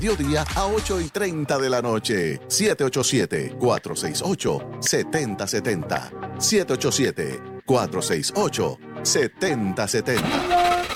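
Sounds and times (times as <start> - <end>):
speech: 0.0 - 10.9
car engine cranking and struggling to start: 10.2 - 10.9.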